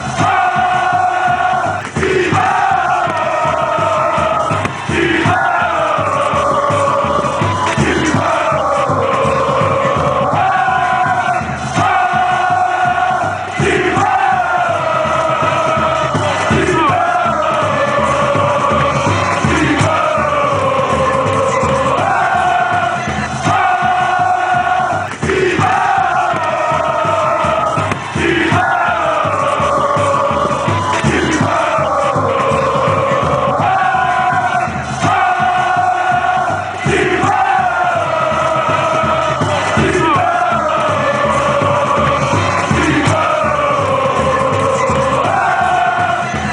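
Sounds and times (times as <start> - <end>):
people chanting: 0.0 - 46.5.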